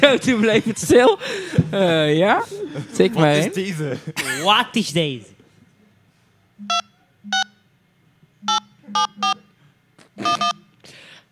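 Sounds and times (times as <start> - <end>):
laughter: 0.0 - 4.8
speech: 0.0 - 5.3
telephone keypad tones dialing a mobile number: 6.6 - 7.6, 8.4 - 9.5, 10.2 - 10.6.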